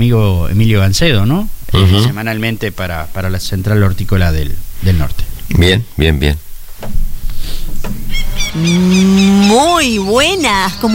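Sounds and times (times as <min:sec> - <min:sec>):
speech: 0:00.0 - 0:10.9
cow mooing: 0:08.1 - 0:10.0.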